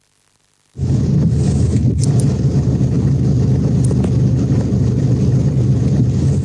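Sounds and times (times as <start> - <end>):
car engine rumbling: 0.8 - 6.4.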